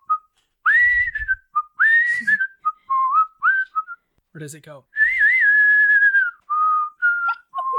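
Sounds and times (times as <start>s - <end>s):
person whistling imitating an arrow's flight: 0.0s - 4.1s, 5.0s - 7.7s
speech: 4.4s - 5.0s.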